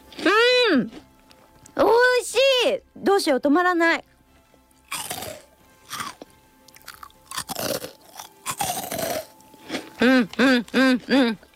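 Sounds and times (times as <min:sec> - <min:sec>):
crunchy light-textured food being bitten and chewed: 0:00.0 - 0:01.8, 0:04.7 - 0:11.5
speech: 0:00.7 - 0:01.0, 0:02.7 - 0:04.1, 0:10.0 - 0:11.4.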